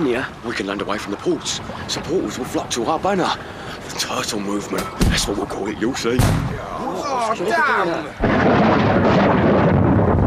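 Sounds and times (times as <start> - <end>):
speech: 0.1 - 9.4
thunder rumbling: 8.2 - 10.2.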